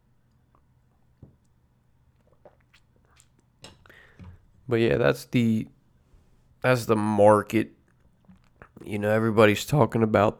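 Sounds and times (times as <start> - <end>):
person sipping coffee from a mug: 2.1 - 4.6, 7.9 - 8.9
speech: 4.7 - 5.8, 6.6 - 7.8, 8.8 - 10.3.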